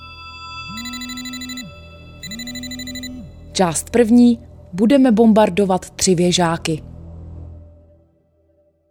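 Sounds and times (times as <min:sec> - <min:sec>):
telephone ringing with electronic trill: 0:00.7 - 0:03.3
speech: 0:03.6 - 0:06.9.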